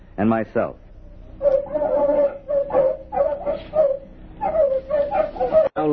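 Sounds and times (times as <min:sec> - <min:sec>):
speech: 0:00.2 - 0:00.8, 0:05.8 - 0:05.9
terriers barking and yipping in crop fields: 0:01.4 - 0:05.8.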